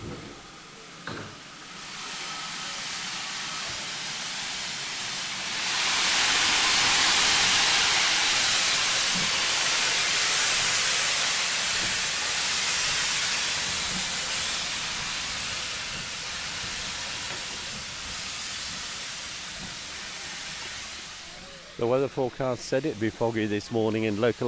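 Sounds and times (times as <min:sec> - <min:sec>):
Great Western Manor class steam locomotive hissing steam on a foggy morning: 0:00.0 - 0:24.4
speech: 0:21.8 - 0:24.4.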